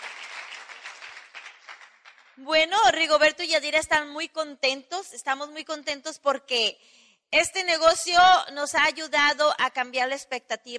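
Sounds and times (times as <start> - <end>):
audience applause: 0.0 - 2.4
speech: 2.4 - 10.7.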